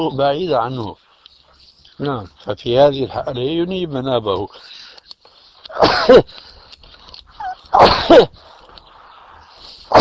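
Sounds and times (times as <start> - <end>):
speech: 0.0 - 1.0, 2.0 - 4.8, 5.7 - 6.5, 7.7 - 8.5
loud explosive sneezes: 5.7 - 6.3, 7.7 - 8.4.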